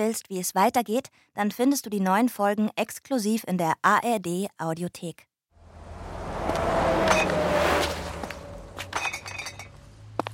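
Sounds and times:
speech: 0.0 - 5.3
truck engine rumbling past: 5.6 - 10.3
sharp glassy clinks: 8.9 - 9.8.

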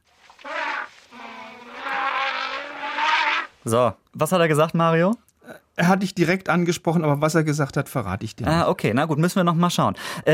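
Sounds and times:
elephant trumpeting: 0.3 - 3.6
speech: 3.6 - 5.2, 5.8 - 10.3.

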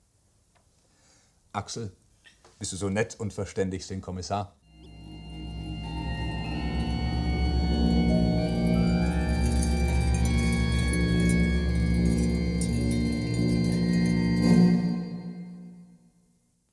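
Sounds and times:
speech: 1.6 - 2.0, 2.6 - 4.6
eerie organ music closing a radio play: 4.7 - 16.0.

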